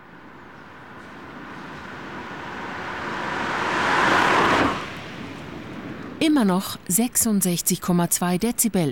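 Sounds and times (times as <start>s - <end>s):
car coasting past in neutral with engine off: 0.0s - 6.2s
speech: 6.2s - 8.8s.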